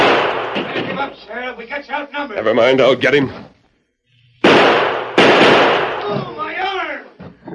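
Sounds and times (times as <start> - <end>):
gunshots in a radio drama shootout: 0.0 - 1.3, 4.4 - 6.7
speech: 1.1 - 3.6.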